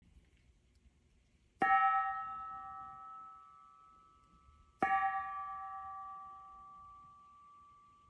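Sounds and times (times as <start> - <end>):
15cm curved gong with black edge: 1.6 - 8.0.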